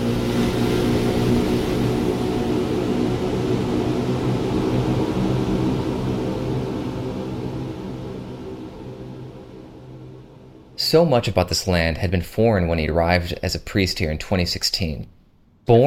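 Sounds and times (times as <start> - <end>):
riverboat motor droning: 0.0 - 10.8
speech: 10.9 - 15.8.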